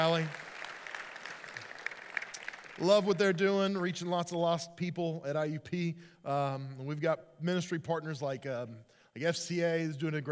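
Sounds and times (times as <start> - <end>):
speech: 0.0 - 0.4, 2.8 - 10.2
audience applause: 0.0 - 2.9.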